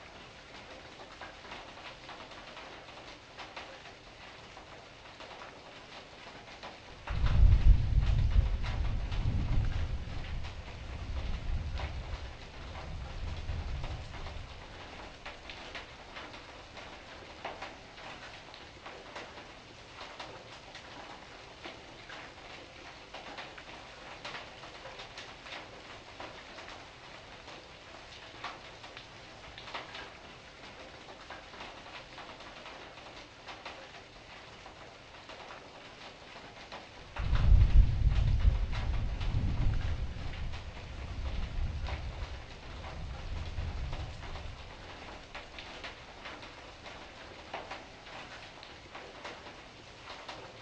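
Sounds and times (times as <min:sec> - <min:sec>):
rain heard indoors: 0:00.0 - 0:50.6
thunder: 0:07.0 - 0:15.4, 0:37.1 - 0:47.0.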